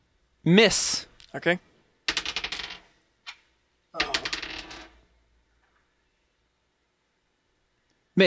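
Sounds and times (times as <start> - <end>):
speech: 0.4 - 1.7
dice rolling on a hard table: 2.1 - 5.8.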